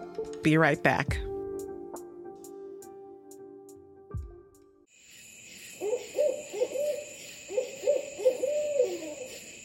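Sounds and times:
speech: 0:00.4 - 0:01.3
steady high buzz of night insects: 0:04.9 - 0:09.6
owl hooting: 0:05.6 - 0:09.6.

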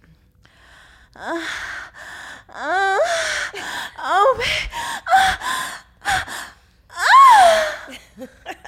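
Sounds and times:
woman performing a faked orgasm with gasps moans and cries: 0:01.0 - 0:08.2
speech: 0:01.2 - 0:01.7.

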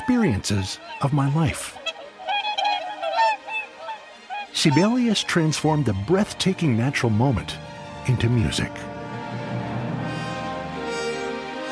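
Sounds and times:
Whooper Swan flight calls: 0:00.0 - 0:05.7, 0:10.1 - 0:11.7
speech: 0:00.1 - 0:01.8, 0:04.6 - 0:08.9.

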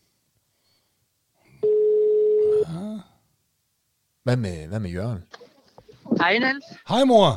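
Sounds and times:
outgoing phone call ringback tone: 0:01.6 - 0:02.6
speech: 0:04.2 - 0:05.5, 0:06.1 - 0:07.3.

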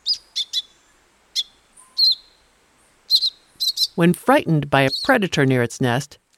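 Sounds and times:
thick-billed euphonia giving high bright chirps: 0:00.0 - 0:04.2, 0:04.8 - 0:05.6
speech: 0:04.0 - 0:06.2.

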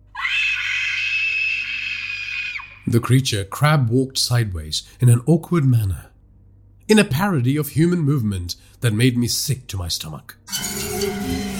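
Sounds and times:
woman's shrill sustained scream: 0:00.1 - 0:02.8
speech: 0:02.9 - 0:06.1, 0:06.9 - 0:11.4.

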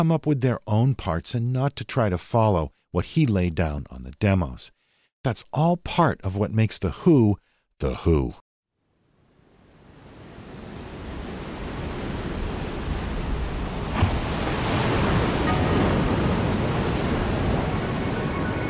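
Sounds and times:
speech: 0:00.0 - 0:08.4
ocean waves crashing on the shore: 0:09.8 - 0:18.6.

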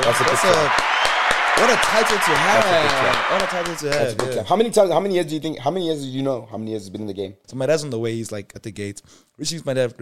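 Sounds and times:
hands clapping: 0:00.0 - 0:04.6
speech: 0:00.1 - 0:09.9.

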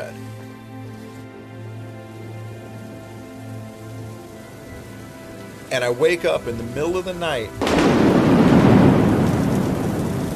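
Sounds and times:
heavy rain: 0:00.0 - 0:10.3
speech: 0:05.7 - 0:08.2
deep rumbling thunder: 0:06.5 - 0:10.3.

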